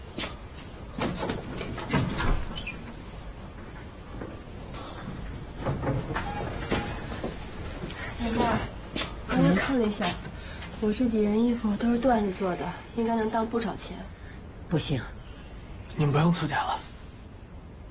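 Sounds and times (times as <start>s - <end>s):
low hum: 0.0s - 17.8s
door clunking and rattling while being opened: 0.9s - 3.0s, 3.6s - 7.6s
speech: 9.7s - 15.2s, 16.0s - 16.9s.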